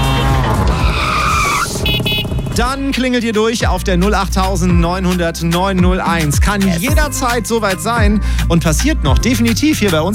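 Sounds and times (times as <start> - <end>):
tuk-tuk tyres skidding and screeching: 0.0 - 2.8
tuk-tuk engine roar: 0.0 - 3.3
speech: 2.6 - 10.1.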